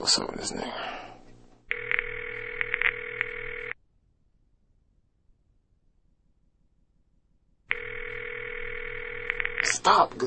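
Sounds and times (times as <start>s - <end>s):
speech: 0.1s - 1.0s, 9.8s - 10.2s
phone ringback tone on an outgoing call: 1.7s - 3.8s, 7.7s - 9.8s.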